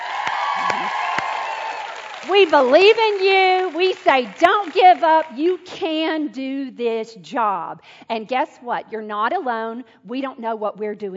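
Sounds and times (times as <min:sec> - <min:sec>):
crowd of moms cheering and whooping: 0:00.0 - 0:02.5
sharp claps: 0:00.0 - 0:05.3
speech: 0:02.2 - 0:11.1.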